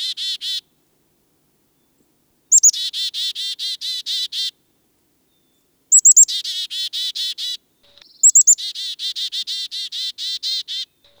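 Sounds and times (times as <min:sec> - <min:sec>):
Black-capped Chickadee alarm calls: 0:00.0 - 0:00.7, 0:02.5 - 0:04.6, 0:05.9 - 0:11.1.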